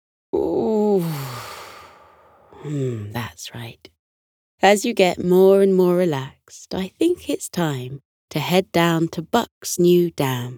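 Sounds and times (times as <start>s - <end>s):
person yawning: 0.4s - 2.0s
speech: 2.6s - 4.0s, 4.6s - 10.5s.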